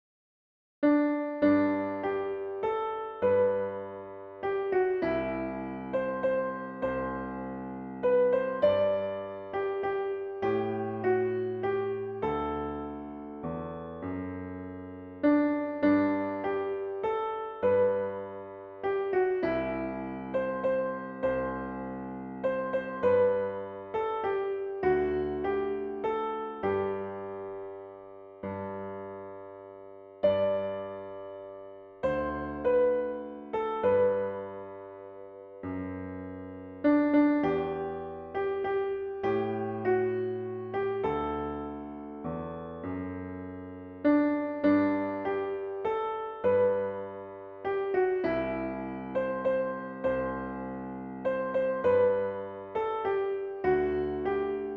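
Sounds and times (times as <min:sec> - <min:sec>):
piano piece: 0:00.8 - 0:54.7.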